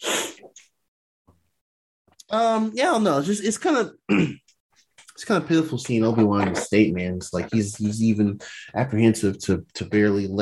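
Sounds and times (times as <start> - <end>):
speech: 2.3 - 4.5, 5.2 - 10.4
harsh cough: 4.1 - 4.4.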